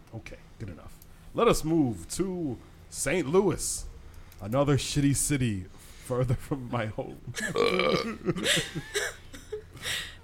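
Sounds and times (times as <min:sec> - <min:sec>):
speech: 0:00.1 - 0:09.2
long loud burp: 0:07.5 - 0:08.2.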